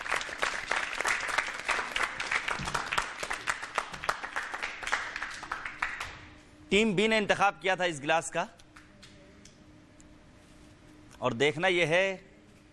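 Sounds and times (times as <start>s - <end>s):
audience applauding loudly at a contest show: 0.0s - 6.3s
speech: 6.7s - 8.6s, 11.2s - 12.3s.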